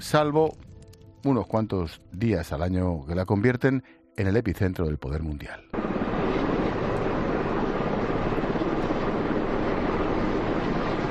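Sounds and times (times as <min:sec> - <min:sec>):
speech: 0:00.0 - 0:00.6, 0:01.2 - 0:05.9
helicopter patrolling a perimeter in Davos Switzerland, rotor and engine roar: 0:05.7 - 0:11.0.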